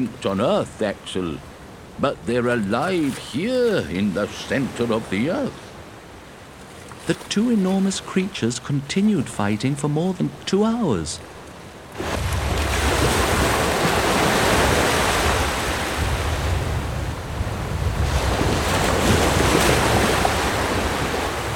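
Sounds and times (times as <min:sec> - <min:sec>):
speech: 0:00.0 - 0:05.7, 0:07.1 - 0:11.3
big ocean waves churning: 0:00.0 - 0:21.5
gusting wind: 0:00.0 - 0:21.5.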